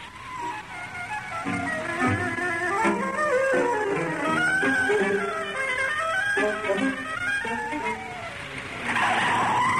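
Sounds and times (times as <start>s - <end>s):
car tires squealing and skidding on corners: 0.0s - 9.7s
speeding car engine roaring: 0.0s - 9.7s.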